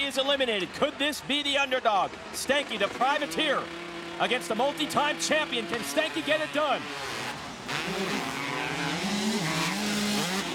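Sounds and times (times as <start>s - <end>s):
speech: 0.1s - 7.2s, 7.9s - 8.4s
motocross bike engines revving hard while racing: 2.1s - 10.5s.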